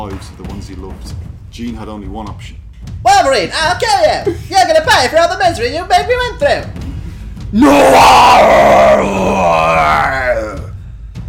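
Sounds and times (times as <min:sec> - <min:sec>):
speech: 0:00.0 - 0:06.9, 0:07.5 - 0:10.1
loud drawn-out human scream: 0:07.6 - 0:10.7.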